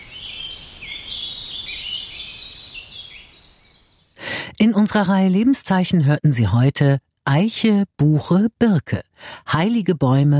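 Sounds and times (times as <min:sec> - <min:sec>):
birds singing in the treetops of an old oak in spring: 0:00.0 - 0:04.2
speech: 0:04.6 - 0:10.3.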